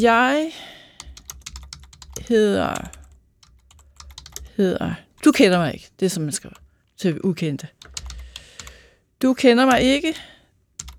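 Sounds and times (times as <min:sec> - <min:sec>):
speech: 0:00.0 - 0:00.7, 0:02.3 - 0:03.0, 0:04.6 - 0:07.8, 0:09.2 - 0:10.3
typing on a computer keyboard: 0:01.0 - 0:04.6, 0:07.8 - 0:08.8, 0:10.8 - 0:10.9.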